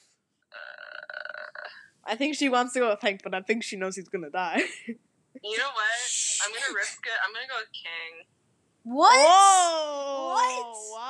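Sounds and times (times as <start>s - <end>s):
person burping: 0.6s - 1.8s
speech: 2.1s - 11.0s.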